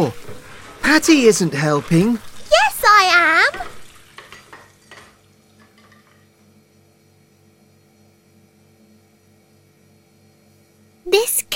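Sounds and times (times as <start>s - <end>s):
speech: 0.0s - 0.2s, 0.9s - 3.7s
watery wash while washing dishes: 0.0s - 4.1s
dishes and utensils clinking: 3.5s - 6.3s.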